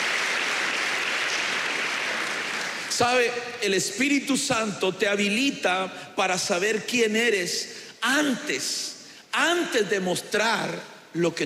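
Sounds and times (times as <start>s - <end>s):
audience applauding: 0.0s - 3.0s
speech: 3.0s - 11.4s.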